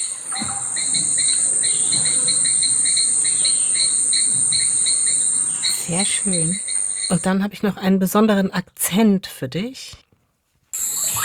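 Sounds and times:
steady high-pitched cricket buzz on Kangaroo Island, Australia: 0.0 - 7.3, 10.8 - 11.2
rapid repeated insect chirps on Kangaroo Island, Australia: 0.0 - 7.4, 10.8 - 11.2
speech: 5.9 - 10.0.

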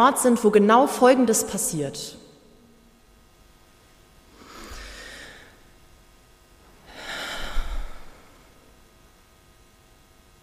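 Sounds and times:
speech: 0.0 - 2.2
deep breathing: 4.3 - 5.7, 6.7 - 8.7.

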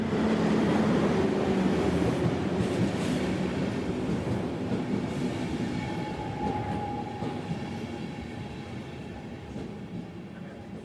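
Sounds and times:
train rolling along a mountain railway through rock: 0.0 - 10.8.

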